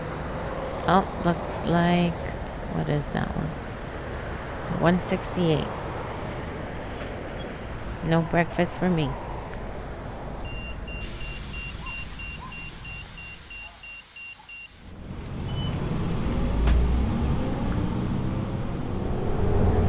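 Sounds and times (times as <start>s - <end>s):
low interior hum of a city bus: 0.0s - 19.8s
speech: 0.8s - 3.6s, 4.7s - 5.8s, 8.0s - 9.2s
quick electronic beeps inside a city bus: 10.5s - 14.9s.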